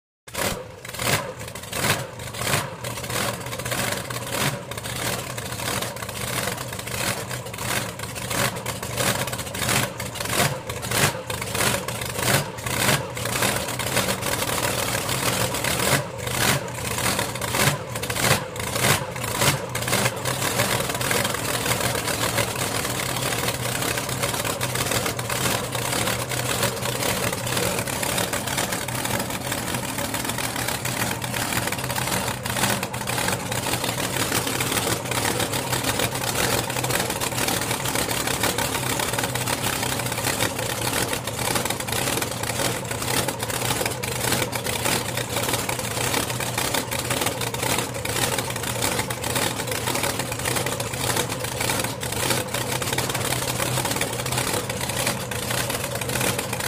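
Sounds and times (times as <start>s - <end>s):
drag boat engine starting and idling: 0.3s - 56.6s.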